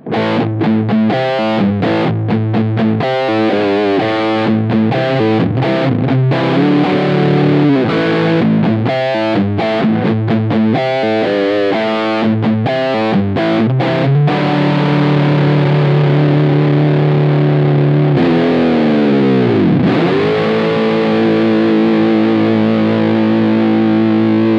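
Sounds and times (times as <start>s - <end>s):
clean guitar amp tone with full sustain: 0.0s - 24.5s.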